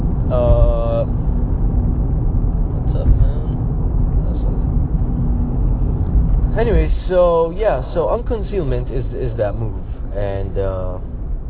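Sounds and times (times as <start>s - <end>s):
heavy low rumble of road noise: 0.0s - 11.4s
speech: 7.1s - 11.1s.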